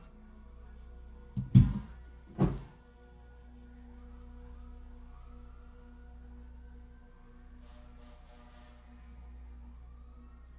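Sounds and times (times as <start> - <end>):
faint low hum: 0.0 - 10.5
door shutting with dull heavy thuds: 1.4 - 2.7.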